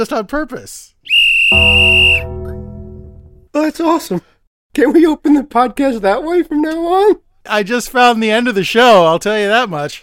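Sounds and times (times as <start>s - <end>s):
speech: 0.0s - 2.4s, 3.6s - 10.0s
person whistling high note: 1.1s - 2.6s.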